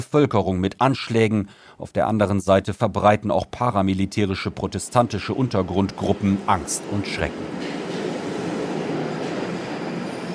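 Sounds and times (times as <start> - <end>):
speech: 0.0 - 7.8
London Underground train rumble running along the tracks: 4.3 - 10.3.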